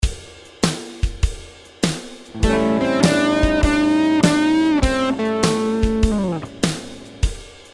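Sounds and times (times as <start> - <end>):
blues note bend: 2.4 - 7.3.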